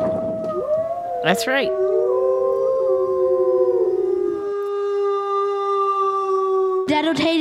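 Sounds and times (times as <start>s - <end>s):
gray wolf howling: 0.0s - 7.0s
speech: 1.2s - 1.9s, 6.9s - 7.3s.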